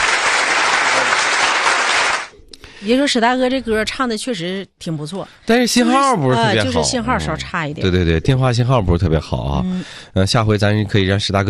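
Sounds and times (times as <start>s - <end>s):
applause after a song: 0.0s - 2.3s
speech: 2.8s - 11.4s.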